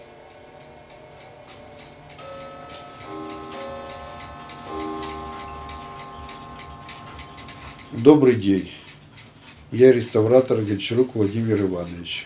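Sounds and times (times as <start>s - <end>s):
mechanical clocks ticking in a clock restoration workshop: 0.0s - 12.2s
sustained ringing chime-like tones: 2.2s - 8.8s
speech: 8.0s - 8.8s, 9.7s - 12.2s.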